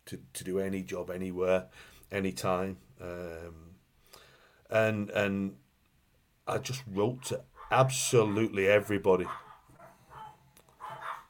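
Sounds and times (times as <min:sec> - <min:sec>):
speech: 0:00.1 - 0:03.7, 0:04.7 - 0:05.6, 0:06.5 - 0:09.4
dogs barking with yaps from another room: 0:07.4 - 0:11.2.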